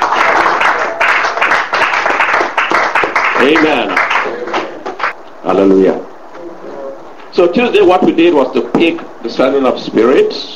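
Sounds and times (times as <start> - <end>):
congregation clapping at a church service: 0.0 - 5.2
speech: 3.5 - 4.1, 5.5 - 6.1, 7.4 - 10.5.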